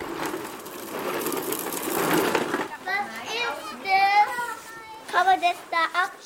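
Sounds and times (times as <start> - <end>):
children playing outdoors in a daycare garden: 0.0 - 6.2
young voices calling and chattering: 2.6 - 6.2.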